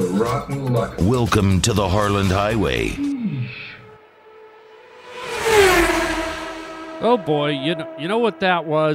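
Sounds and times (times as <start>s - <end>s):
speech: 0.2s - 3.1s, 7.0s - 8.9s
fast car whooshing past: 4.2s - 8.0s.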